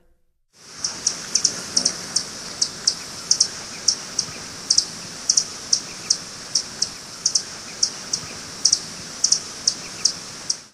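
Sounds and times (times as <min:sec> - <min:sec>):
Calliope Hummingbird in North America: 0:00.6 - 0:10.7.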